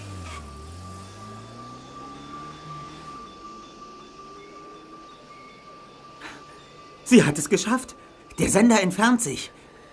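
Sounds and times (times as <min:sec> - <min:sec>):
vehicle whooshing past: 0:00.0 - 0:05.0
taxi engine revving as it pulls away: 0:00.0 - 0:08.4
steady hum of surrounding traffic: 0:00.0 - 0:09.9
speech: 0:07.1 - 0:09.6.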